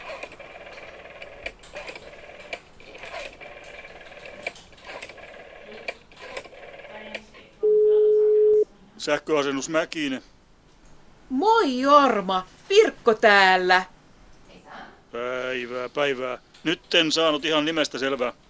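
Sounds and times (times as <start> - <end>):
telephone dialing clicks: 0.0 - 7.2
telephone line tone: 7.6 - 8.7
speech: 9.0 - 10.4, 11.3 - 13.9, 15.1 - 18.4.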